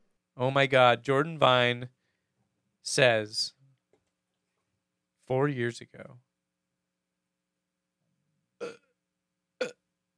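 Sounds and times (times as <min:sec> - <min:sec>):
speech: 0:00.4 - 0:02.0, 0:02.8 - 0:03.6, 0:05.3 - 0:06.2, 0:08.6 - 0:08.8
short abrupt burps: 0:08.6 - 0:09.0, 0:09.6 - 0:09.9.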